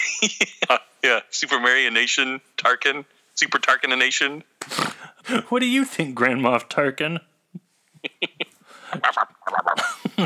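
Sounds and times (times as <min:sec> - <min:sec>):
people laughing: 0:00.0 - 0:01.0, 0:07.6 - 0:10.2
speech: 0:00.2 - 0:07.3, 0:08.1 - 0:10.2
person sneezing: 0:04.6 - 0:05.0.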